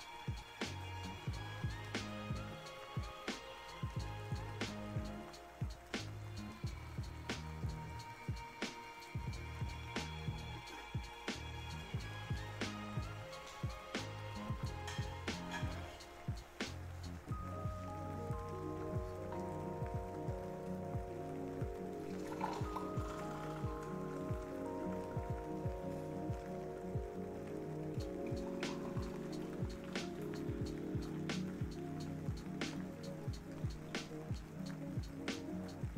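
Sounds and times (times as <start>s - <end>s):
light rain drips and taps: 0.0s - 35.9s
tea pouring into a cup in a kitchen: 18.6s - 29.8s.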